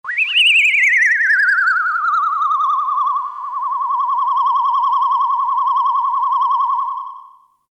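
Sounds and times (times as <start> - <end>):
whistling sweep: 0.0 - 7.4.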